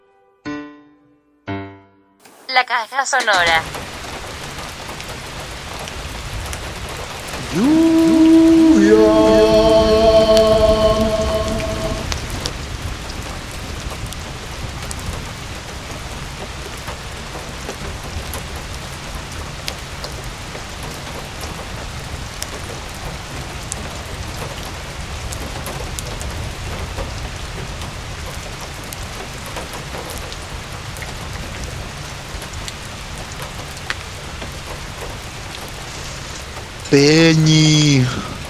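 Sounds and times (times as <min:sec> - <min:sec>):
speech: 0:02.5 - 0:03.8, 0:07.6 - 0:08.0
heavy rain pouring: 0:03.0 - 0:38.4
sustained humming tone: 0:07.5 - 0:12.2.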